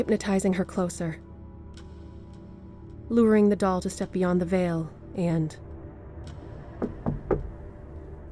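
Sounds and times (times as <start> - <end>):
speech: 0.0 - 1.3, 3.1 - 5.7
knocks on metal: 6.8 - 7.5.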